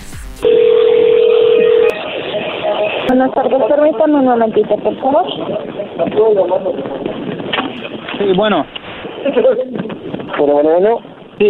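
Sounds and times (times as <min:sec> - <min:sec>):
telephone line tone of a call going through: 0:00.4 - 0:03.2
telephone line hiss: 0:00.4 - 0:04.2
speech: 0:03.2 - 0:07.1, 0:08.2 - 0:11.4.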